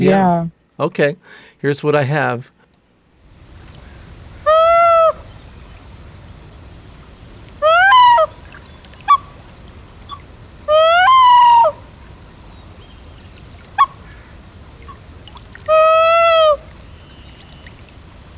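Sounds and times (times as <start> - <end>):
speech: 0.0 - 2.6
male Common Loon territorial yodel: 4.3 - 5.3, 7.5 - 8.4, 9.0 - 16.7.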